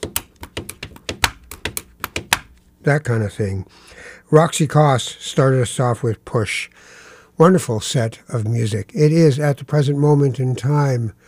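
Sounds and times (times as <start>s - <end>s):
pen tapping on paper: 0.0s - 2.6s
speech: 2.8s - 11.2s.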